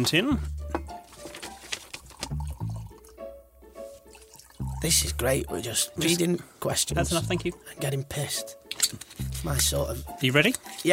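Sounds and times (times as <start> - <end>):
speech: 0.0 - 0.6, 4.8 - 10.9
drink being poured into a glass: 2.0 - 3.1, 4.0 - 5.0.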